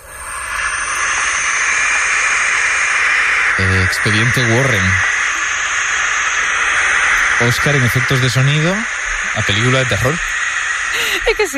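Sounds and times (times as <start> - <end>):
barn owl chicks hissing: 0.0 - 11.5
speech: 3.6 - 5.1, 7.4 - 10.3, 11.3 - 11.5.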